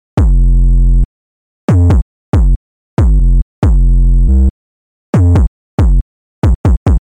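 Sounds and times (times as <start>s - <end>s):
808 bass: 0.2s - 0.6s, 1.7s - 4.1s, 5.2s - 7.0s.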